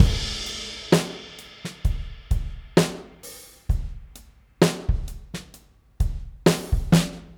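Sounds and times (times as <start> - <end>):
drum kit loop: 0.0 - 7.3.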